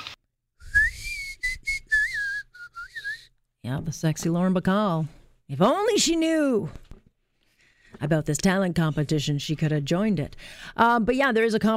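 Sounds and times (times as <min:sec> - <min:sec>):
person whistling a short tune: 0:00.6 - 0:03.3
speech: 0:03.6 - 0:06.8, 0:08.0 - 0:11.7.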